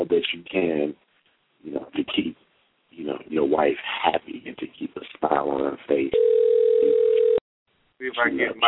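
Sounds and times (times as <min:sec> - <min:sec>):
speech: 0:00.1 - 0:02.4, 0:03.0 - 0:06.9, 0:08.0 - 0:08.6
telephone dial tone while placing a call: 0:06.1 - 0:07.4.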